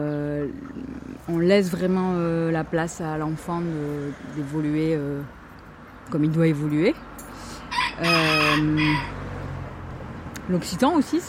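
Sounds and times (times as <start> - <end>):
speech: 1.3 - 5.4, 6.1 - 7.1, 8.0 - 9.2, 10.5 - 11.2
rooster crowing among chickens kept near a vegetable garden: 7.7 - 9.4.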